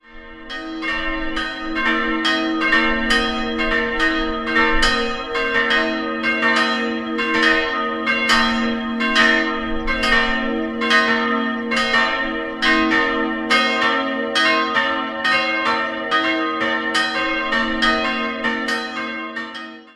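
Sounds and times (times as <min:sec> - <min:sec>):
parish church bells in Lambertsneukirchen: 0:00.0 - 0:19.9.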